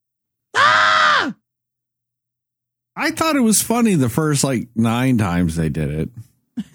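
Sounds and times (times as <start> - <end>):
goat screaming: 0.6 - 1.4
speech: 3.0 - 6.7.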